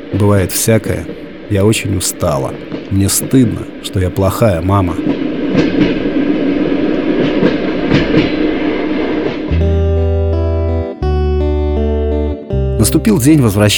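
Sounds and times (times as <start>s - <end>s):
steady droning tone: 0.0s - 12.8s
speech: 0.1s - 6.0s, 12.8s - 13.7s
train carriage rumbling along rails with clacks: 0.1s - 9.5s.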